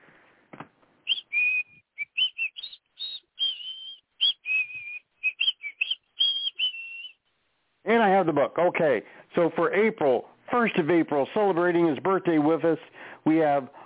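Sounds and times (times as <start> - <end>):
person whistling a show tune: 1.1 - 7.2
speech: 7.9 - 13.8.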